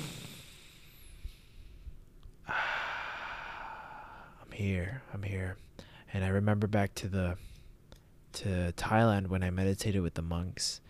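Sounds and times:
deep breath drawn in sharply: 0.0s - 4.4s
quiet hiss: 0.0s - 10.8s
speech: 4.6s - 7.5s, 8.4s - 10.8s.

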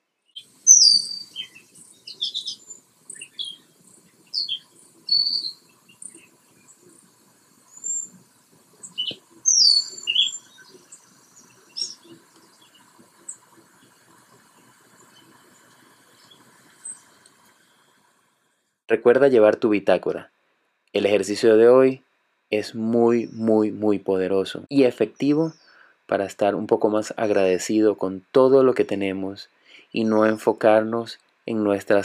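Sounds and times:
birds singing outdoors in short bright chirping phrases: 0.2s - 18.0s, 22.6s - 25.9s
faint steady buzz of insects: 0.3s - 18.6s, 21.0s - 32.0s
speech: 18.9s - 20.4s, 21.0s - 32.0s.

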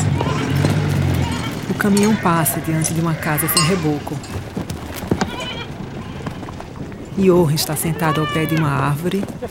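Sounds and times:
knocks and rustling: 0.0s - 7.2s
goats bleating: 0.0s - 9.4s
speech: 1.8s - 4.5s, 7.2s - 9.4s.

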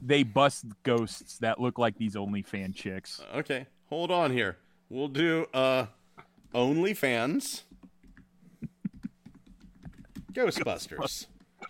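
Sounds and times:
speech: 0.0s - 7.7s, 10.4s - 11.3s
typing on a computer keyboard: 7.7s - 8.3s, 8.9s - 10.4s.

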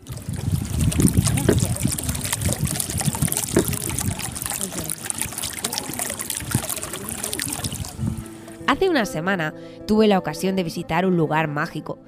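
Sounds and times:
water trickling and splashing from a fountain at the Alhambra in Granada Spain: 0.0s - 8.6s
speech: 8.8s - 12.0s.

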